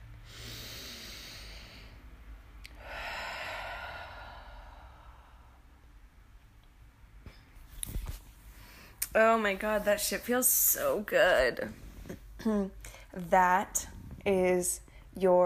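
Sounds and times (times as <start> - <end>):
deep breath taken slowly: 0.2 - 5.9, 8.5 - 9.0
speech: 9.2 - 15.4.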